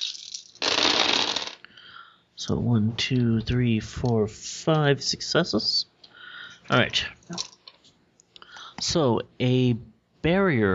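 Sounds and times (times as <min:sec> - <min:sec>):
handful of dice clattering across a hard surface: 0:00.0 - 0:01.6, 0:07.3 - 0:07.8
speech: 0:02.4 - 0:05.9, 0:06.7 - 0:07.5, 0:08.8 - 0:10.7.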